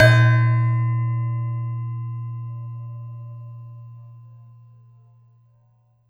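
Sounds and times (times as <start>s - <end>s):
gender gamelan metallophone: 0.0s - 2.6s.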